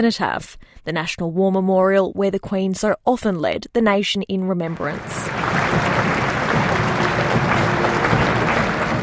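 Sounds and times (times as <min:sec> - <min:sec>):
speech: 0:00.0 - 0:06.2
large crowd applauding at a funeral procession: 0:04.8 - 0:09.0.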